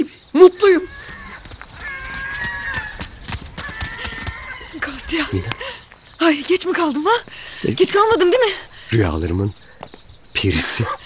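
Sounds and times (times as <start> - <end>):
clopping hoof-like footsteps approaching: 0.6 - 8.3
speech: 6.3 - 9.6, 10.4 - 11.0.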